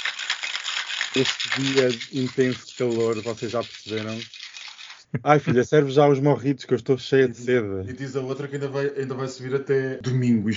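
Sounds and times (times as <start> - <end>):
ice rattling in a cocktail shaker: 0.0 - 5.1
speech: 1.2 - 4.4, 5.1 - 10.5.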